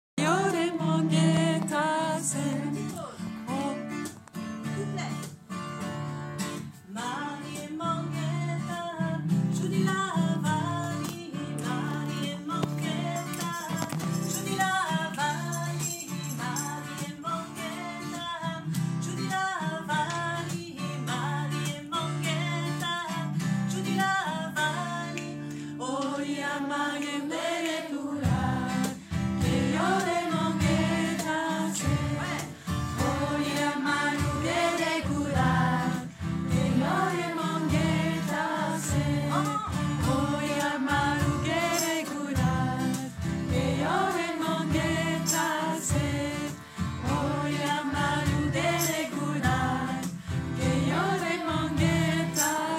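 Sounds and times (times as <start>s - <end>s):
Indian world music song: 0.2s - 52.7s.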